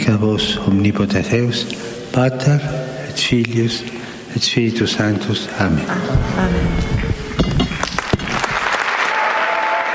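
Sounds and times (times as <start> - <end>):
speech: 0.1 - 7.5
large crowd applauding: 7.8 - 9.9.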